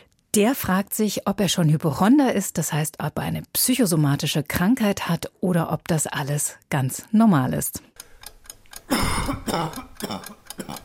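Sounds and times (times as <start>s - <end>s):
speech: 0.4s - 8.0s, 9.0s - 10.8s
faint ticking clicks: 7.9s - 10.8s
dry irritable cough: 8.9s - 10.8s.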